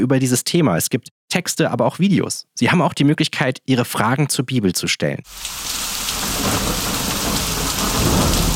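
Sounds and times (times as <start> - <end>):
speech: 0.0 - 6.8
steady dense rain: 5.3 - 8.5
low thunder rumbling: 5.6 - 8.5.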